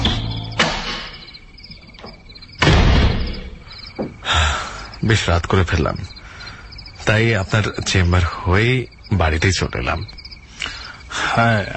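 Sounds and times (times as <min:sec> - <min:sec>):
steady chirping: 0:00.0 - 0:11.7
house door opening: 0:00.5 - 0:04.3
speech: 0:05.0 - 0:06.2, 0:07.1 - 0:10.2, 0:11.4 - 0:11.7.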